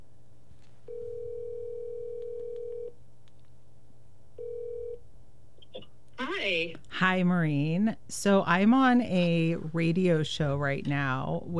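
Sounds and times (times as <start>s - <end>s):
low hum: 0.0s - 11.5s
phone line ringing tone: 0.9s - 2.9s, 4.4s - 5.0s
speech: 6.5s - 11.5s.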